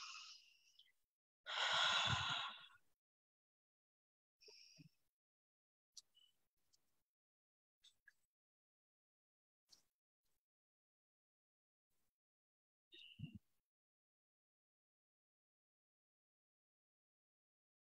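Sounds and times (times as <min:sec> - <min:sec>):
deep breathing: 0:01.5 - 0:02.8.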